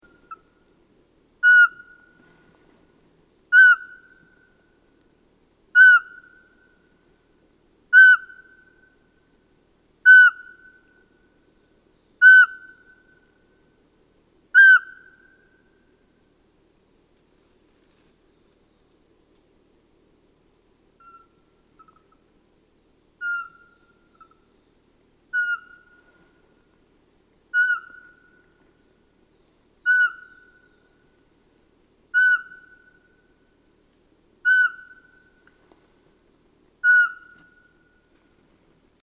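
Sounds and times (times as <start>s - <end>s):
Eurasian pygmy owl monotonous sparse whistle series: 1.4s - 2.1s, 3.5s - 4.4s, 5.8s - 6.5s, 7.9s - 8.9s, 10.0s - 10.8s, 12.2s - 13.2s, 14.6s - 15.5s, 21.0s - 22.2s, 23.2s - 24.4s, 25.3s - 26.1s, 27.5s - 28.5s, 29.8s - 30.8s, 32.1s - 33.2s, 34.4s - 35.3s, 36.8s - 37.7s.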